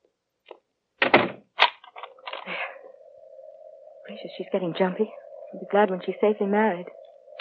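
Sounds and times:
door shutting with a solid thunk: 1.0 - 1.4
speech: 4.1 - 7.0.

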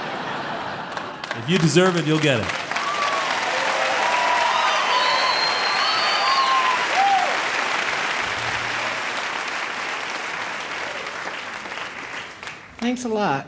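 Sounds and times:
laughter: 0.0 - 2.5
crowd applauding: 0.0 - 12.8
speech: 1.4 - 2.6, 13.0 - 13.4
high whistles from a crowd: 4.5 - 7.4.

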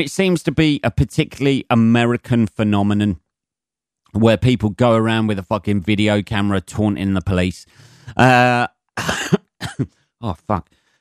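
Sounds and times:
speech: 0.0 - 3.2, 4.1 - 10.8
person coughing: 9.0 - 9.9.

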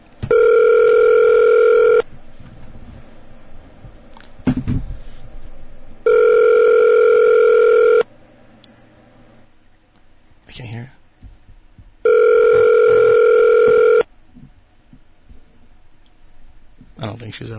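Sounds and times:
telephone ringback tone while a call is being placed: 0.3 - 2.1, 6.0 - 8.1, 12.0 - 14.1.

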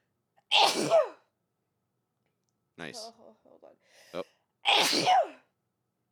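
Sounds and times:
person sneezing: 0.5 - 1.2, 4.7 - 5.4
speech: 0.5 - 1.2, 2.8 - 5.4.

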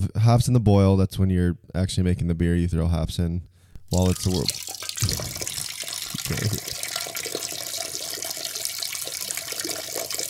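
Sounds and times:
speech: 0.2 - 5.4, 6.3 - 6.8
person urinating loudly: 3.8 - 10.2.

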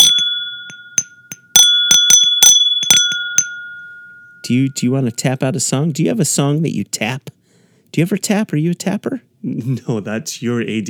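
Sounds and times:
glasses clinking in a toast: 0.0 - 5.0
speech: 4.5 - 10.8.

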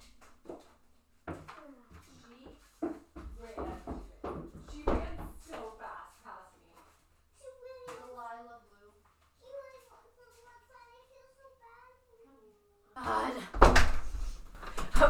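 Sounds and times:
brief shuffle: 0.0 - 10.6, 13.9 - 15.0
child talking: 7.4 - 13.5
loud thud of a door being shut: 13.6 - 15.0.

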